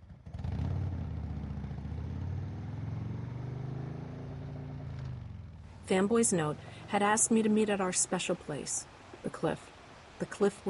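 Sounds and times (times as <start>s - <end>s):
motorbike carrying two riders revving and speeding off: 0.0s - 5.6s
speech: 5.9s - 10.6s.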